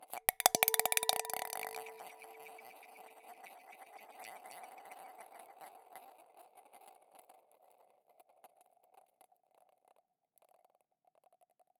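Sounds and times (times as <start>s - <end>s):
ping pong ball rattling in a large wine glass: 0.0s - 3.3s.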